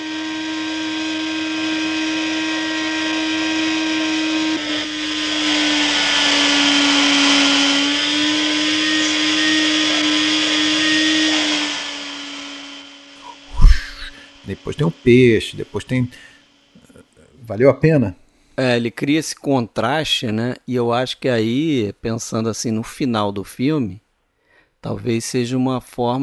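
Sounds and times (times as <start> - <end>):
vacuum cleaner running in a house: 0.0 - 16.5
speech: 14.8 - 16.3, 17.5 - 24.0, 24.8 - 26.2.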